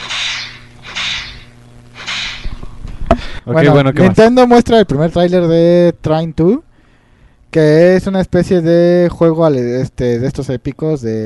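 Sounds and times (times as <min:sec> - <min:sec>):
whip swung and cracked: 0:00.0 - 0:02.5
speech: 0:03.4 - 0:06.7, 0:07.5 - 0:11.2.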